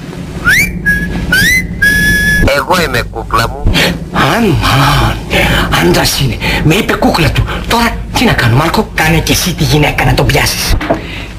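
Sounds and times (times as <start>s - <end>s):
person whistling over the telephone: 0.4s - 2.5s
speech: 2.6s - 11.0s.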